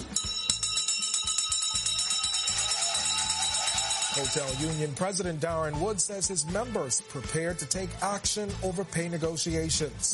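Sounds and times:
bell ringing rapidly: 0.0 - 5.3
speech: 4.2 - 10.1.

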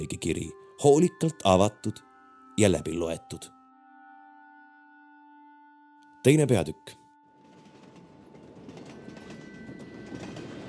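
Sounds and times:
speech: 0.0 - 3.6, 6.2 - 7.0
train clattering along the rails on a winter day: 7.4 - 10.6.

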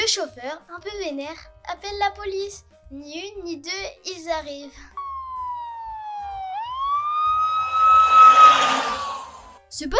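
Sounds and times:
speech: 0.0 - 4.9, 9.7 - 9.9
fire engine siren wailing: 5.0 - 9.6.

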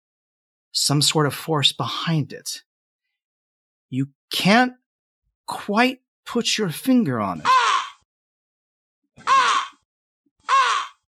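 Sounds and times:
speech: 0.7 - 2.7, 3.9 - 4.8, 5.5 - 7.6
large crow cawing outside: 7.4 - 8.0, 9.2 - 9.8, 10.4 - 11.1.

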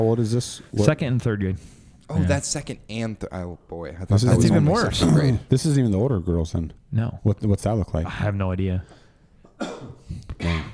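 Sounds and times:
speech: 0.0 - 9.0
person coughing: 9.5 - 10.7.

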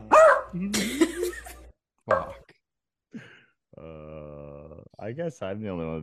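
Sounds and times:
single loud sharp dog bark: 0.0 - 0.6, 2.1 - 2.4
speech: 0.5 - 1.0, 5.1 - 6.0
lower drawn-out voice-like murmur: 3.8 - 4.9.

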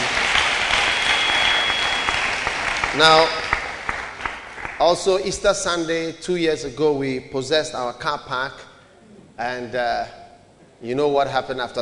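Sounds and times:
church congregation applauding on Easter Sunday: 0.0 - 5.3
speech: 3.0 - 3.4, 4.8 - 8.7, 9.4 - 10.2, 10.8 - 11.7.

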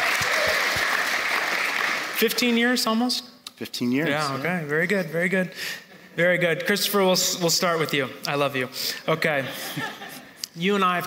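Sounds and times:
audience clapping: 0.0 - 2.8
speech: 2.2 - 10.0, 10.6 - 11.0
laughter: 9.2 - 10.4.

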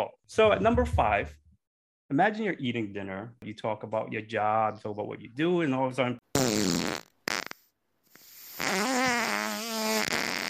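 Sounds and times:
speech: 0.0 - 1.4, 2.1 - 6.9
person farting at dinner: 6.4 - 7.7, 8.3 - 10.4.

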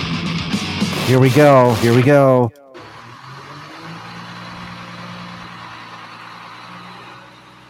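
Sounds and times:
speech: 1.1 - 2.6
diesel garbage truck engine rumbling: 1.4 - 7.6.

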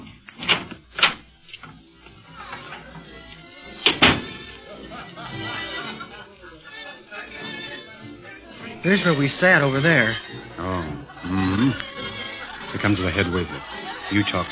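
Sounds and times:
door opening and shutting: 0.0 - 1.9, 2.5 - 4.5
steady murmur of chatter: 0.8 - 14.5
laughter: 2.1 - 14.5
speech: 8.8 - 10.2, 12.8 - 14.5.

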